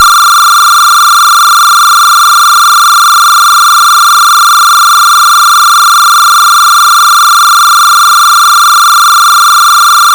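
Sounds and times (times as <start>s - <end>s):
alternating combined signal tone: 0.0s - 10.1s.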